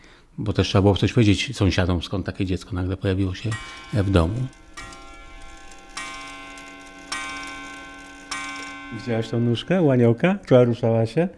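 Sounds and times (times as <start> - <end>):
speech: 0.4 - 4.6, 9.0 - 11.3
wooden clock ticking: 3.1 - 10.6.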